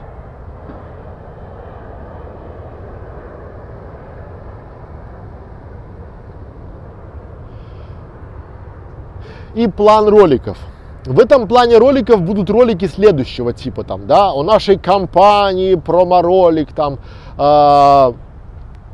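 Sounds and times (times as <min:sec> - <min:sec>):
airplane flying overhead: 0:00.0 - 0:18.9
speech: 0:09.5 - 0:18.2.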